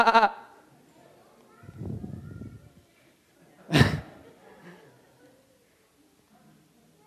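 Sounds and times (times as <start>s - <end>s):
person imitating a sheep's bleat: 0.0s - 0.4s.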